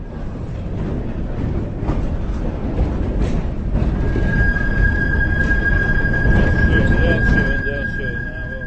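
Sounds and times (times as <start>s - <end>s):
tram rumbling along rails: 0.0s - 8.6s
thin high-pitched tram wheel squeal on a curve: 4.0s - 8.6s.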